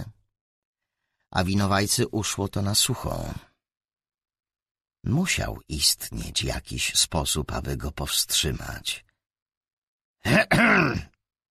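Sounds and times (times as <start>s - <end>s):
speech: 1.3s - 3.5s, 5.0s - 9.1s, 10.2s - 11.1s
man clearing his throat: 10.2s - 11.2s.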